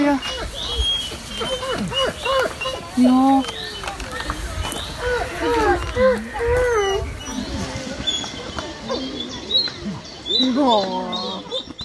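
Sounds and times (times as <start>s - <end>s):
two hand-raised wolves whining, yelping and wailing in an enclosure: 0.0s - 11.8s
speech: 3.0s - 3.6s, 10.6s - 11.0s.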